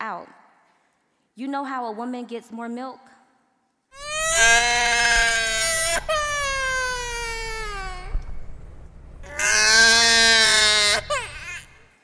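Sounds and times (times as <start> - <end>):
speech: 1.4 - 3.2
baby wailing: 4.0 - 8.4, 9.2 - 12.0.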